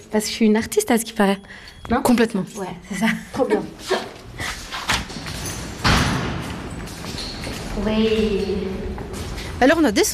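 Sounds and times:
speech: 0.1s - 4.2s, 7.8s - 9.0s, 9.6s - 10.1s
door thudding shut: 5.8s - 6.7s.

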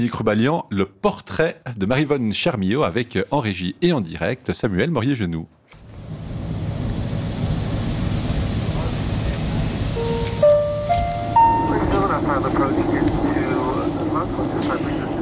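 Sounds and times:
speech: 0.0s - 5.6s
airplane engine drone inside cabin: 5.9s - 15.2s
airplane cabin chime tones: 10.0s - 12.2s.

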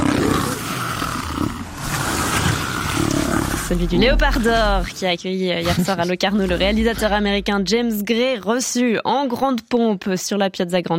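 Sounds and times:
big cat roaring: 0.0s - 4.9s, 5.7s - 7.8s
speech: 3.7s - 10.9s.

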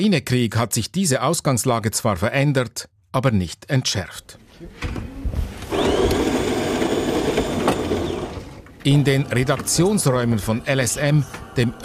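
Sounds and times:
speech: 0.0s - 5.0s, 8.8s - 11.8s
brand-new coffee machine motor grinding in a newsroom: 5.7s - 11.8s.

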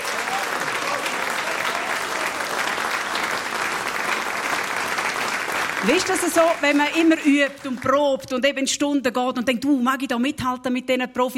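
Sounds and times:
audience applause: 0.0s - 8.2s
speech: 5.8s - 11.3s.

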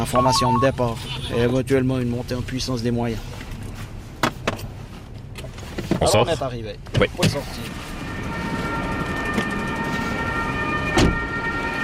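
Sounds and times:
ambulance siren arriving at fire scene: 0.0s - 0.8s, 7.8s - 11.8s
speech: 0.0s - 3.4s, 6.0s - 7.8s.

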